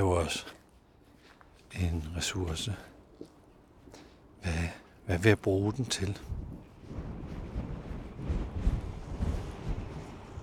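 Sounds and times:
speech: 0.0 - 0.6, 1.7 - 3.3, 4.4 - 6.5
strong wind blowing on microphone outdoors: 5.8 - 10.4.

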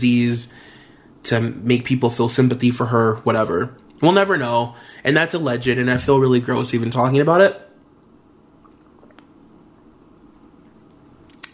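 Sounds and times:
speech: 0.0 - 0.6, 1.2 - 7.6
steady low hum: 0.0 - 11.5
person gulping water into the microphone: 8.5 - 9.4.

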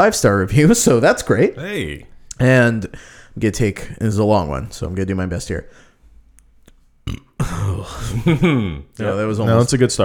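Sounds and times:
speech: 0.0 - 5.9, 7.1 - 10.0
person burping: 7.0 - 8.9.

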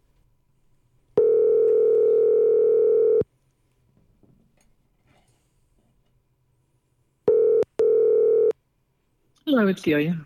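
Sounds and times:
telephone dial tone while dialing a call: 1.2 - 3.2, 7.3 - 8.5
speech: 9.5 - 10.2.

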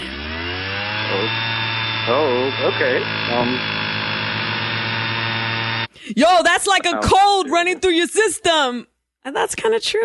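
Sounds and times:
leaf blower engine whine with breathy rush of air: 0.0 - 6.0
speech: 2.1 - 3.8, 6.1 - 10.0.

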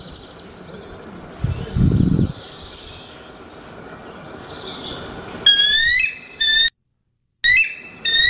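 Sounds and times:
bald eagle high thin chittering calls: 0.0 - 6.7, 7.4 - 8.2
brief low rumble: 1.3 - 2.7.

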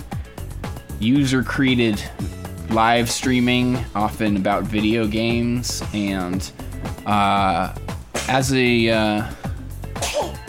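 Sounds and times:
speech: 1.0 - 9.4
person sneezing: 8.2 - 8.4, 10.0 - 10.4.

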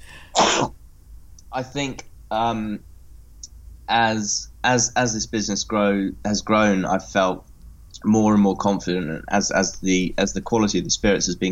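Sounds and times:
person sneezing: 0.0 - 0.7
speech: 1.6 - 2.9, 3.9 - 11.4.

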